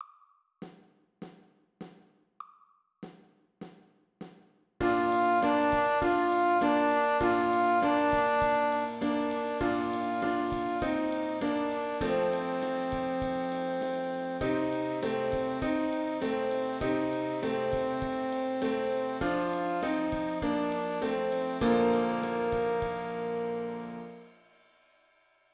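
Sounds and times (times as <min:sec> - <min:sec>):
saxophone melody: 0:04.8 - 0:24.3.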